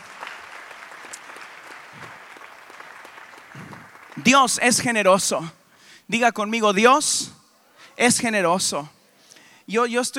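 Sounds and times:
congregation clapping in a large room: 0:00.0 - 0:05.4
speech: 0:03.6 - 0:07.4, 0:08.0 - 0:09.0, 0:09.7 - 0:10.1.

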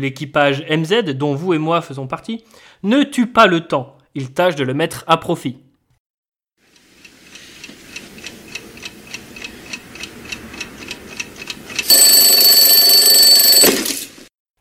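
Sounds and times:
speech: 0:00.0 - 0:05.6
clock ticking: 0:06.7 - 0:11.8
alarm clock with loud continuous electronic ring: 0:11.8 - 0:13.8.

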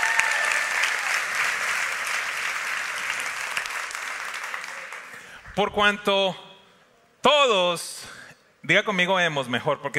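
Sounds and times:
audience applause: 0:00.0 - 0:05.4
speech: 0:05.6 - 0:06.4, 0:07.2 - 0:09.9.

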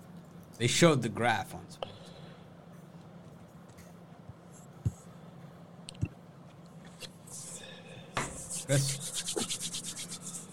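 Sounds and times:
speech: 0:00.6 - 0:01.9, 0:08.7 - 0:09.1
hands rubbing together against a microphone: 0:08.2 - 0:10.5.

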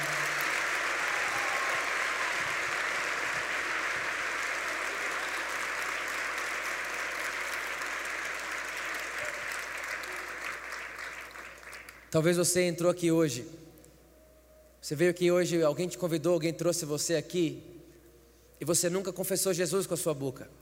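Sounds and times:
large audience applauding: 0:00.0 - 0:12.1
speech: 0:12.1 - 0:13.6, 0:14.9 - 0:17.7, 0:18.6 - 0:20.5.

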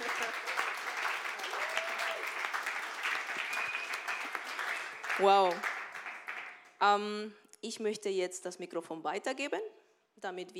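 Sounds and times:
audience applauding: 0:00.0 - 0:06.7
whistle-like tone: 0:03.4 - 0:04.3
speech: 0:05.2 - 0:05.7, 0:06.8 - 0:10.5.

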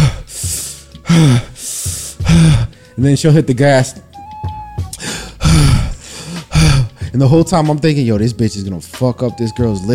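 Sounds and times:
person imitating heavy nauseous breathing: 0:00.0 - 0:03.0, 0:04.9 - 0:07.2
speech: 0:01.1 - 0:01.5, 0:03.0 - 0:04.1, 0:07.2 - 0:09.9.

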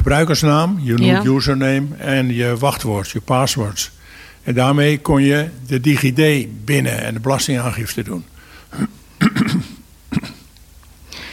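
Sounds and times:
speech: 0:00.1 - 0:09.0
man coughing with a rough phlegmy rasp: 0:08.7 - 0:10.5.

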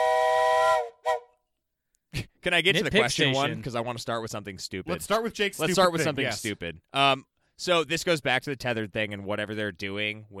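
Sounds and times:
steam whistle blowing: 0:00.0 - 0:01.4
speech: 0:02.4 - 0:10.3.

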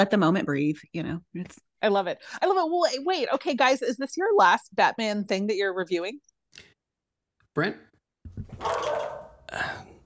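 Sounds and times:
speech: 0:00.0 - 0:06.7, 0:07.6 - 0:09.9
dog barking: 0:08.5 - 0:09.5.

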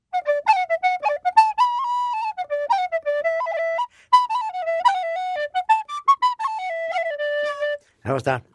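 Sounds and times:
solo tin whistle playing a bright lilting melody: 0:00.0 - 0:07.9
breaths: 0:03.8 - 0:04.2, 0:07.8 - 0:08.0
speech: 0:08.1 - 0:08.5.

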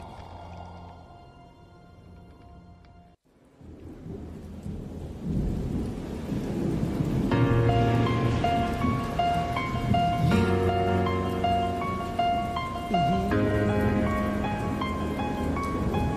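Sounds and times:
steady rain: 0:00.0 - 0:16.1
rumbling thunder: 0:03.6 - 0:16.1.

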